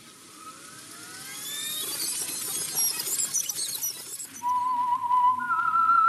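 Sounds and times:
noisy crackling with sliding tones: 0:00.0 - 0:06.0
man whistling a tune: 0:04.4 - 0:06.0.

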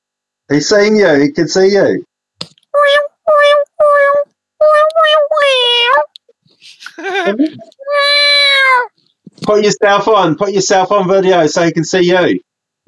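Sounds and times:
speech: 0:00.5 - 0:02.1, 0:09.5 - 0:12.8
cat meowing: 0:02.8 - 0:06.2, 0:07.6 - 0:08.9
laughter: 0:06.6 - 0:07.8.

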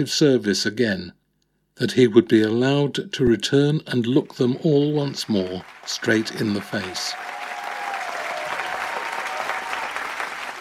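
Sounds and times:
speech: 0:00.0 - 0:01.2, 0:01.8 - 0:07.3
crowd applause: 0:05.0 - 0:10.6
faint cheering: 0:05.6 - 0:10.6.

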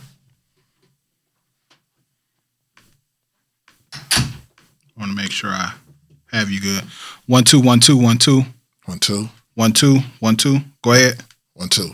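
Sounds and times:
door closing and latching: 0:04.0 - 0:04.5
speech: 0:05.0 - 0:11.9.

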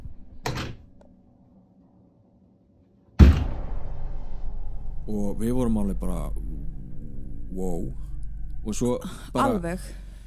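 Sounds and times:
door banging open: 0:03.2 - 0:03.7
rumbling noise: 0:03.2 - 0:10.2
speech: 0:05.1 - 0:06.8, 0:07.5 - 0:10.0.

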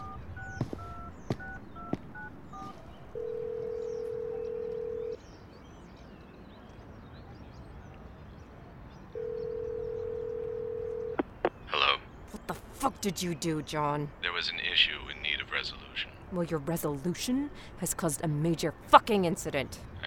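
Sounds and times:
long steady telephone ringing tones: 0:00.0 - 0:05.2, 0:09.2 - 0:11.2
telephone dialing beeps: 0:00.0 - 0:05.2
speech: 0:13.0 - 0:15.0, 0:15.6 - 0:19.9.

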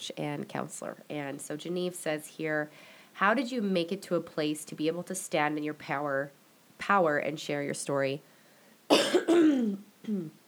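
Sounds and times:
speech: 0:00.0 - 0:08.3, 0:08.9 - 0:10.4
person coughing: 0:08.9 - 0:10.3.

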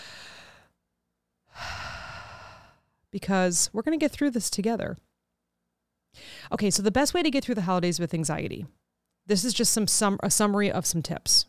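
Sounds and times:
deep breath drawn in and let out slowly during a calming exercise: 0:01.5 - 0:02.9
speech: 0:03.1 - 0:05.1, 0:06.2 - 0:11.4.

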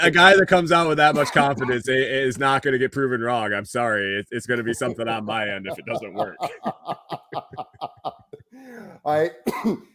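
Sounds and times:
speech: 0:00.0 - 0:07.9, 0:08.6 - 0:09.9
laughter: 0:00.1 - 0:01.8, 0:04.5 - 0:08.5
person in a coughing fit with hacking and raspy coughs: 0:05.7 - 0:08.6, 0:09.4 - 0:09.9.

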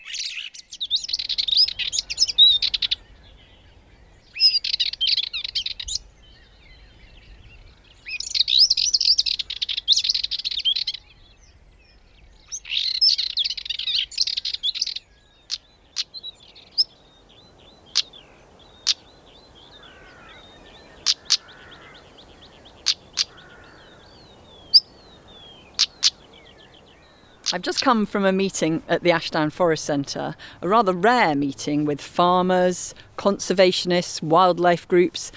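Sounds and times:
blackbird singing: 0:00.7 - 0:27.9
speech: 0:27.6 - 0:35.3.

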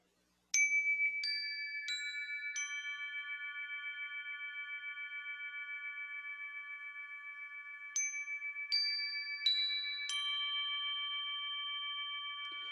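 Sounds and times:
metallic chimes being struck and ringing: 0:00.6 - 0:12.6.

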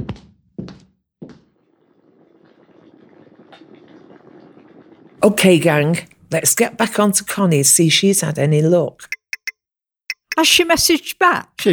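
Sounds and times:
kettle water heating: 0:01.7 - 0:07.3
speech: 0:05.2 - 0:09.2, 0:10.4 - 0:11.7.

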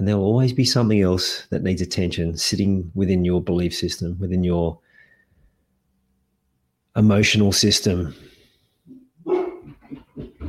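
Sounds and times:
speech: 0:00.0 - 0:04.8, 0:07.0 - 0:08.3
dog barking at passerby: 0:08.9 - 0:09.9.

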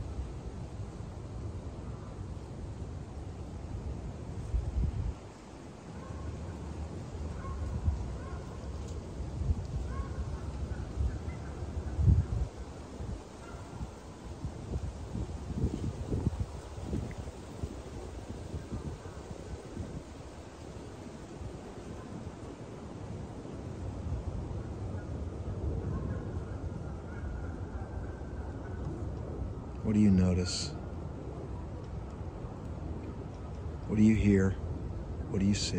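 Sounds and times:
leaves rustling: 0:00.0 - 0:35.7
wind blowing through trees on a sunny day: 0:00.0 - 0:35.7
speech: 0:29.9 - 0:30.7, 0:34.0 - 0:34.6, 0:35.4 - 0:35.7.

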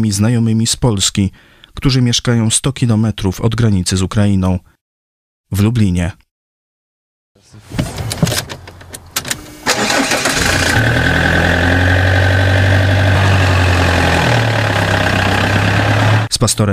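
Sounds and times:
speech: 0:00.0 - 0:04.7, 0:05.5 - 0:06.2, 0:16.4 - 0:16.7
car engine cranking: 0:07.6 - 0:16.3.

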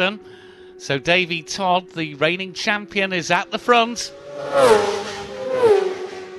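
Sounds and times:
speech: 0:00.0 - 0:05.1
racing motorcycles roaring past during a road race: 0:03.2 - 0:06.3.

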